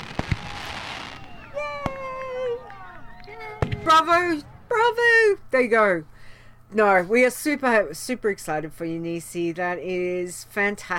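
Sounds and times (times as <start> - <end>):
fireworks rising whistles: 0.0 - 3.7
fireworks bangs: 0.0 - 5.4
speech: 3.9 - 6.1, 6.7 - 10.9.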